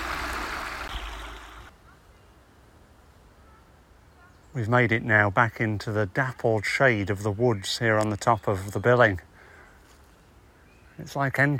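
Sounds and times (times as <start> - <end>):
stream rushing through a concrete channel: 0.0 - 1.7
speech: 4.6 - 9.3, 11.0 - 11.5.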